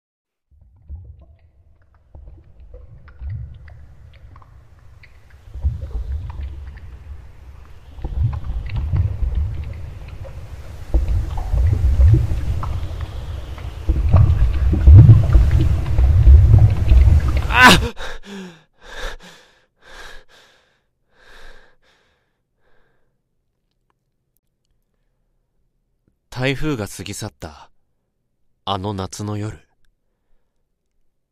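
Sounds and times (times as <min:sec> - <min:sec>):
rushing muddy floodwater heard as if submerged: 0:00.5 - 0:18.2
speech: 0:26.5 - 0:27.7, 0:28.7 - 0:29.7.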